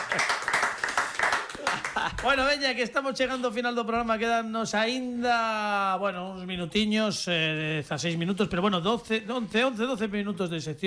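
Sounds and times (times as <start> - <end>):
several people clapping: 0.0 - 2.6
speech: 0.2 - 0.4, 2.2 - 10.8.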